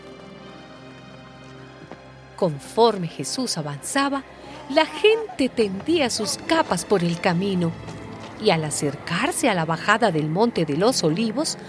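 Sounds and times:
donkey hooves clip-clopping at a walking pace: 0.4s - 2.4s, 4.5s - 9.4s
speech: 2.4s - 11.6s.

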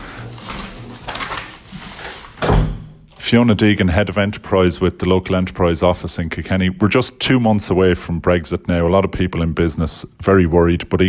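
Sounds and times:
door pulled shut with a solid thud: 2.4s - 3.1s
speech: 3.3s - 11.0s.

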